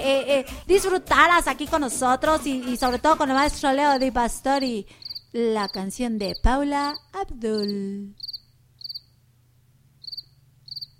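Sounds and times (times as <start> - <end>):
speech: 0.0 - 8.3
low hum: 2.5 - 10.9
cricket chirping: 3.9 - 9.2, 10.0 - 10.9.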